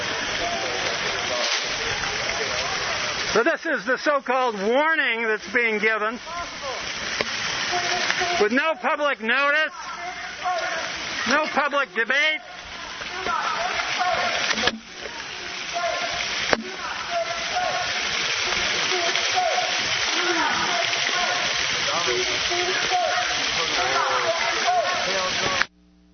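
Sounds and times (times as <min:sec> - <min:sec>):
indistinct voices murmuring faintly: 0:00.0 - 0:25.7
water splashing and rushing at a duck pond: 0:00.0 - 0:25.7
speech: 0:03.4 - 0:07.0, 0:07.7 - 0:09.9, 0:11.2 - 0:12.5.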